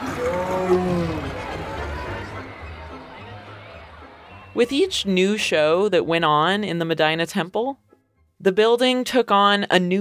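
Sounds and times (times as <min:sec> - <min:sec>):
tiger roaring: 0:00.0 - 0:02.1
laughter: 0:00.0 - 0:04.5
steady noise: 0:00.0 - 0:09.9
speech: 0:00.7 - 0:01.2, 0:04.6 - 0:07.8, 0:08.4 - 0:09.9.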